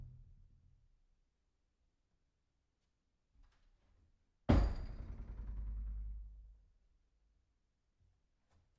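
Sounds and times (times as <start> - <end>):
door hitting backstop: 4.5 - 6.3.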